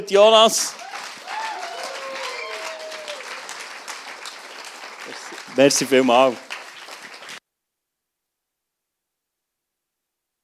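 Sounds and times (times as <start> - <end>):
speech: 0.0 - 0.8, 5.6 - 6.5
standing audience applause welcoming a speaker: 0.6 - 7.4
faint voices and whoops from the audience: 0.8 - 3.6.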